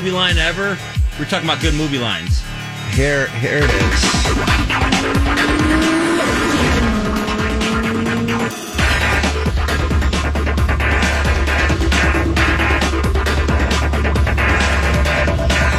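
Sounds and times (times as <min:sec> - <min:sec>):
speech: 0:00.0 - 0:05.9
Ferrari sports car engine revving: 0:03.6 - 0:15.6
road noise: 0:03.7 - 0:14.8
tire squeal: 0:04.1 - 0:08.6.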